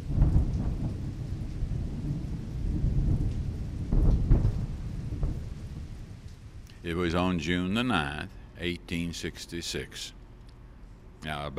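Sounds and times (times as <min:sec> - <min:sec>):
deep rolling thunder during a thunderstorm: 0:00.0 - 0:06.9
steady rain during a thunderstorm: 0:00.0 - 0:11.5
speech: 0:06.9 - 0:10.2, 0:11.2 - 0:11.5.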